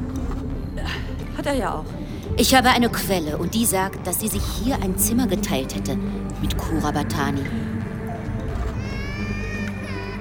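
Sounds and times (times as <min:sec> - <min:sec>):
steady low rumble: 0:00.0 - 0:10.1
speech: 0:01.4 - 0:07.7
baby crying: 0:08.5 - 0:10.1.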